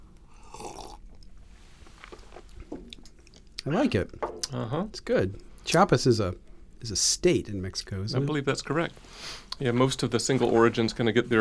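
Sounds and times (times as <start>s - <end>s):
person sipping freshly brewed just-roasted Chiapas coffee from Mexico: 0.4s - 1.0s
mouth and swallowing noises: 0.4s - 4.6s
speech: 3.6s - 11.3s.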